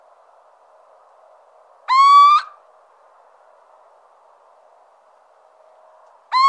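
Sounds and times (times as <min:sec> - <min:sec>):
faint low background hiss: 0:00.0 - 0:06.4
little owl plaintive upward-sliding whistle: 0:01.9 - 0:02.6.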